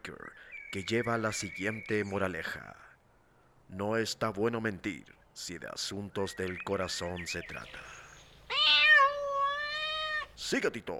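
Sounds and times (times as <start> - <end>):
speech: 0.1 - 2.9, 3.7 - 8.0, 10.4 - 10.9
cat meowing: 8.5 - 10.4.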